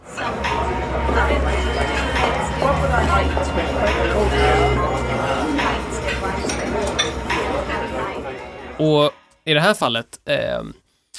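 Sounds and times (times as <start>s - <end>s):
restaurant guests chattering: 0.0s - 8.8s
music in a restaurant: 0.0s - 10.8s
dishes and cutlery clinking in a restaurant: 1.7s - 8.1s
speech: 8.8s - 10.8s.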